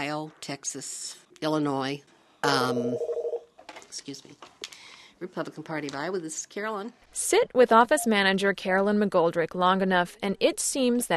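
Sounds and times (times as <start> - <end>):
speech: 0.0 - 3.1, 3.9 - 4.6, 5.2 - 11.1
electronic telephone tones in a party headquarters office: 2.7 - 3.5.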